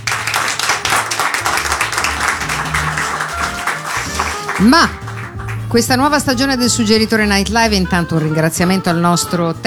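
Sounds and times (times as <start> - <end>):
crowd applauding: 0.0 - 6.2
speech: 4.6 - 5.0, 5.7 - 9.6.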